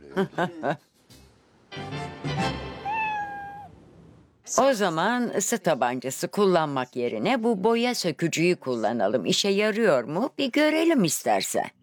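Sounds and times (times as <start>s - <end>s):
laughter: 0.0s - 1.0s
speech: 0.2s - 0.9s, 4.6s - 11.8s
cat meowing: 2.8s - 3.8s.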